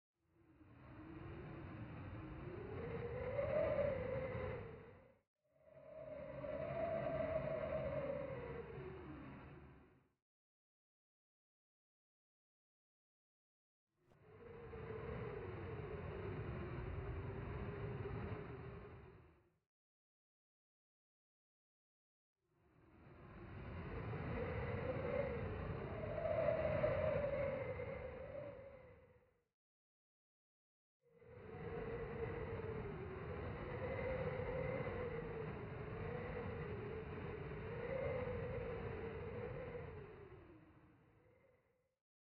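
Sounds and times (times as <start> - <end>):
howling wind: 0.4 - 10.1, 14.2 - 19.5, 22.6 - 29.4, 31.1 - 41.9.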